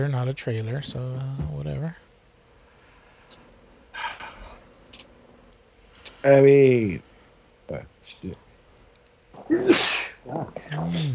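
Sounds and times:
speech: 0.0 - 2.1, 6.2 - 7.1, 7.7 - 8.4, 9.4 - 11.1
puppy sneezing: 9.5 - 10.4.

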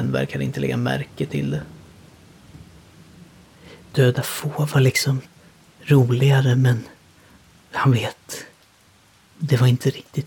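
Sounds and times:
thunder rumbling: 0.0 - 6.5
heavy rain: 0.0 - 10.2
speech: 0.1 - 1.8, 4.0 - 7.0, 7.7 - 8.5, 9.4 - 10.2.

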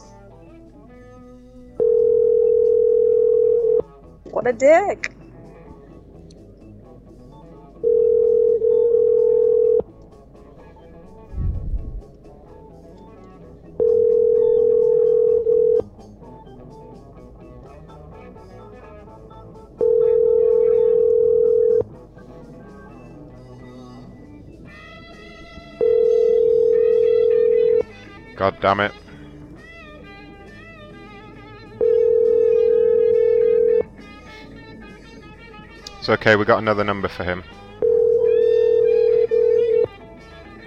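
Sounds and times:
telephone ringback tone: 1.1 - 3.9, 7.8 - 9.8, 13.7 - 15.9, 19.8 - 21.9, 25.4 - 28.0, 31.6 - 34.1, 37.8 - 40.0
speech: 4.4 - 5.1, 28.6 - 29.1, 36.1 - 37.6.

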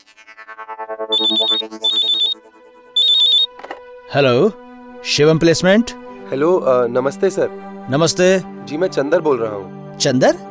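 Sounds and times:
electronic warbling ringing of an outgoing phone call on a local line: 1.1 - 2.4, 3.0 - 3.6
rapid lower pulsing phone tones: 1.1 - 2.4
speech: 1.2 - 1.9, 4.1 - 10.4.

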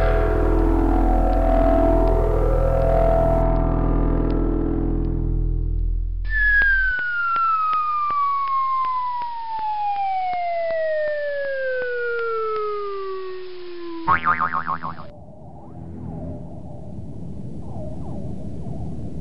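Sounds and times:
sci-fi reverse tractor beam sound effect: 0.0 - 5.7, 6.3 - 15.1.

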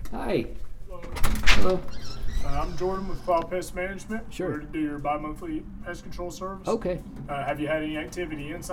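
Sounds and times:
speech: 0.2 - 0.6, 1.6 - 8.7
front door swinging open: 1.0 - 3.5.

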